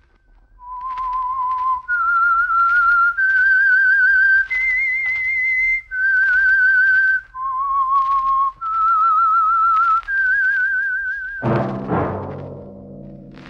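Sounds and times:
lone whistled theme tune melody: 0:00.6 - 0:11.8
brief orchestral chord: 0:11.4 - 0:13.4.

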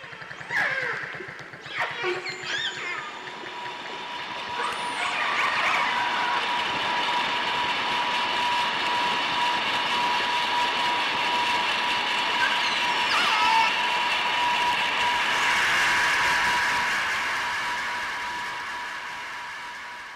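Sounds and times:
underwater dolphin whistles and clicks: 0:00.0 - 0:06.5, 0:12.2 - 0:13.9
passing boat's droning engine noise underwater: 0:00.0 - 0:19.7.

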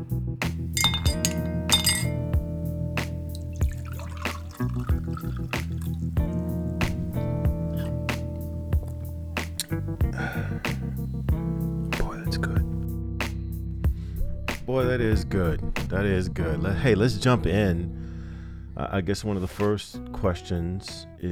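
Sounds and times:
steady musical bed: 0:00.0 - 0:21.2
glasses clinking: 0:00.7 - 0:02.3, 0:03.3 - 0:06.2
speech: 0:14.8 - 0:18.1, 0:18.8 - 0:21.2.

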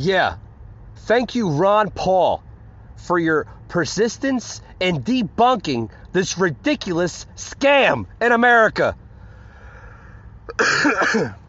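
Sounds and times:
speech: 0:00.0 - 0:00.4, 0:01.0 - 0:02.4, 0:03.0 - 0:09.0, 0:10.6 - 0:11.4
person with seasonal allergies clearing throat: 0:10.5 - 0:11.4
person with seasonal allergies coughing: 0:10.5 - 0:11.4.

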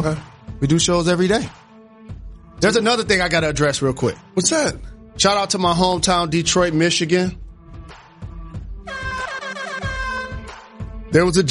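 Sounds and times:
speech: 0:00.0 - 0:01.6, 0:02.6 - 0:07.4, 0:11.1 - 0:11.4
air horn blast with bright buzzing harmonic tone: 0:08.9 - 0:10.6.

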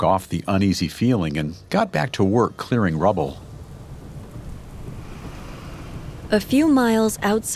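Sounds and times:
speech: 0:00.0 - 0:03.5, 0:06.3 - 0:07.5
gusting wind of a thunderstorm: 0:00.0 - 0:07.5
deep low rumble: 0:01.6 - 0:07.5
heavy rain of a thunderstorm: 0:01.7 - 0:07.5.

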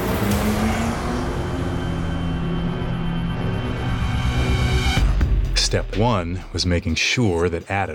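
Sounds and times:
car engine rumbling as the vehicle pulls away: 0:00.0 - 0:05.2
speech: 0:05.7 - 0:07.9.

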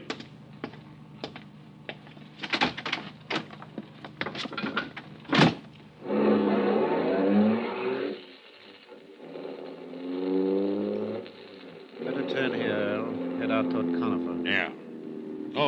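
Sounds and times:
clicks and handling noises: 0:00.0 - 0:05.9
car engine starting and car pulling away: 0:00.0 - 0:15.6
car door slam: 0:05.3 - 0:05.7
speech: 0:13.5 - 0:14.8.

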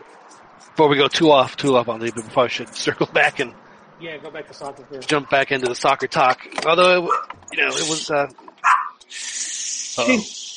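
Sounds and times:
speech: 0:00.8 - 0:08.5, 0:10.0 - 0:10.4
guard dog barking: 0:07.1 - 0:07.3, 0:08.6 - 0:09.0
broadband hissing noise: 0:07.6 - 0:08.3, 0:09.1 - 0:10.5.

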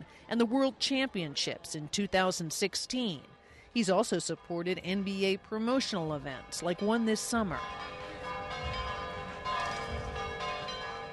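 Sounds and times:
speech: 0:00.3 - 0:08.0
church bells tolling in Rome: 0:04.1 - 0:11.1.

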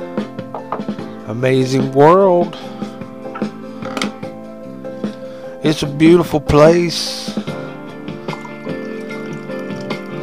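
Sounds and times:
speech: 0:01.3 - 0:02.8, 0:05.6 - 0:07.4
coffee pouring into a cup: 0:08.2 - 0:10.2.

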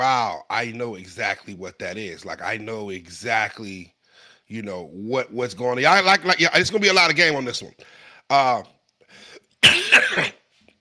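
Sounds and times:
speech: 0:00.0 - 0:10.4
loud raspy cough: 0:09.6 - 0:10.4.

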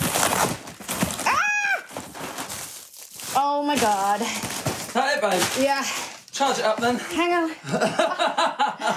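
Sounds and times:
package being ripped open with crackly tearing and crinkling: 0:00.0 - 0:06.3
speech: 0:03.4 - 0:08.9
laughter: 0:07.6 - 0:08.9.

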